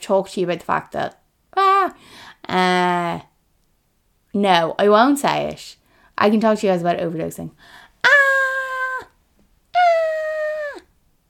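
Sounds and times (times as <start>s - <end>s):
speech: 0.0s - 1.2s, 1.8s - 3.3s, 4.4s - 8.2s
person giving put-on fake screams: 8.0s - 9.1s, 9.8s - 10.9s.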